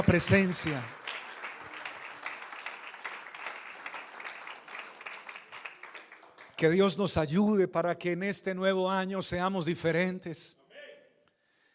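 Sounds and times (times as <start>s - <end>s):
speech: 0.0s - 1.0s, 6.6s - 10.6s
audience applause: 0.0s - 6.6s.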